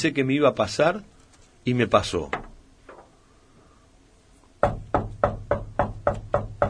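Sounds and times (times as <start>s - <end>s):
speech: 0.0s - 2.5s
firm knocks on a door: 4.6s - 6.6s.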